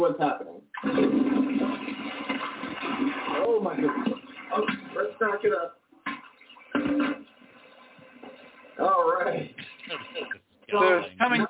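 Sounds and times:
speech: 0.0 - 1.0
toilet flushing: 0.7 - 5.4, 6.0 - 10.0.

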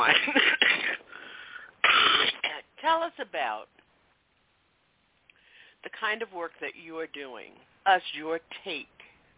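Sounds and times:
harsh breathy coughing: 0.1 - 2.5
wheezy intake of breath: 1.1 - 1.7
speech: 6.0 - 9.0.

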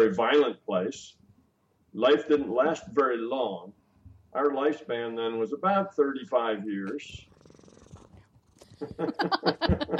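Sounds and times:
speech: 0.0 - 1.2, 2.0 - 3.8, 4.4 - 7.3, 8.8 - 9.9
cat purring: 7.0 - 9.1
laughter: 8.8 - 9.9.

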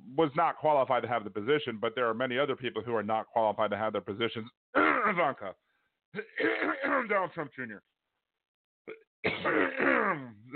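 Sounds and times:
speech: 0.2 - 7.9, 8.8 - 10.5
person coughing harshly: 4.8 - 5.2, 6.2 - 7.2, 8.9 - 10.5.

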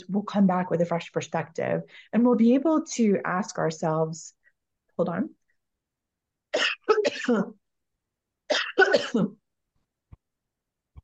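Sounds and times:
speech: 0.0 - 4.4, 5.0 - 5.4, 6.6 - 7.6, 8.5 - 9.4
harsh coughing and throat clearing: 6.5 - 7.6, 8.5 - 9.4.

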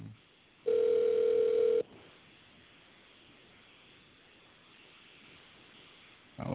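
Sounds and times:
faint telephone line noise: 0.0 - 6.5
telephone line tone after a dropped cell phone call: 0.7 - 1.9.

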